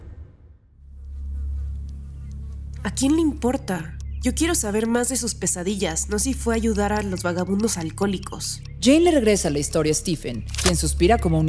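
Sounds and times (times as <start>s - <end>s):
flies buzzing: 0.8s - 9.2s
speech: 2.8s - 11.4s.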